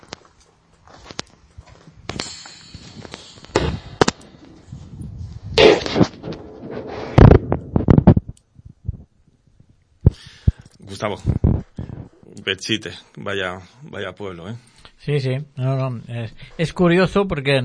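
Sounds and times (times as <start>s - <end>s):
booming bangs from someone bumping a fence in Belchite Spain: 2.1s - 8.1s
speech: 11.0s - 11.4s, 12.5s - 17.6s.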